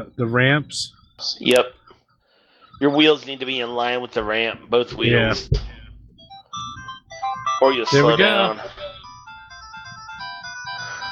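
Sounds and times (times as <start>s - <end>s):
speech: 0.0s - 1.8s, 2.8s - 5.7s, 7.6s - 8.8s
high-pitched electronic tones from a motorbike racing video game: 5.8s - 11.1s.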